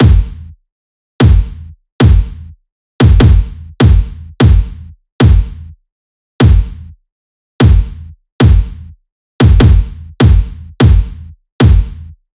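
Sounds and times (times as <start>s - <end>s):
kick drum loop: 0.0s - 0.4s, 1.2s - 2.4s, 3.0s - 5.6s, 6.4s - 6.8s, 7.6s - 8.8s, 9.4s - 12.0s.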